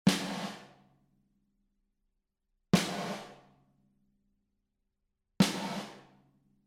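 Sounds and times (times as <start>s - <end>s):
snare drum with gated reverb: 0.1s - 0.8s, 2.8s - 3.4s, 5.4s - 6.1s.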